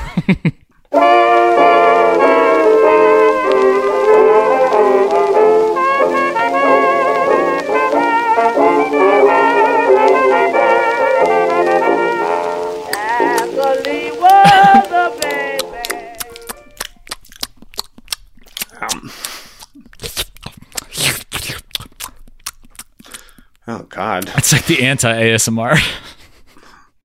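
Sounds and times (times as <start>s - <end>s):
laughter: 0.0s - 0.6s, 14.3s - 15.1s
speech: 0.3s - 1.4s, 24.7s - 26.1s
sustained harmonic music: 0.9s - 16.8s
mouth chewing wetly close to the microphone: 12.9s - 23.6s.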